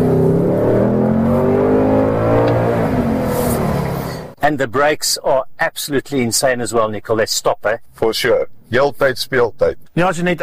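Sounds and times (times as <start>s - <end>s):
Ford Mustang engine revving: 0.0s - 4.4s
speech: 4.5s - 10.4s.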